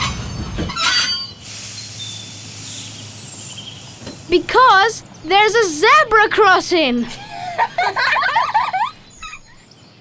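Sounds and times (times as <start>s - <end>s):
safari park train rumbling and clattering: 0.0s - 1.3s
train brake squeal and hiss: 0.0s - 5.8s
speech: 4.3s - 7.2s
laughter: 4.3s - 9.4s.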